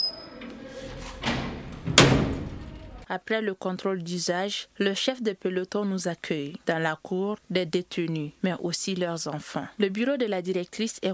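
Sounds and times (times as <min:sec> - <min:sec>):
heavy metal prison door grinding open: 0:00.0 - 0:03.0
speech: 0:03.1 - 0:11.1.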